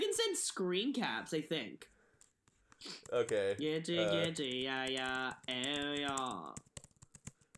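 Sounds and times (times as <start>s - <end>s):
speech: 0.4s - 2.0s, 2.8s - 6.7s
rapid hard angry typing on a computer keyboard: 2.2s - 7.5s
loud droning voice-like tone: 4.0s - 4.2s.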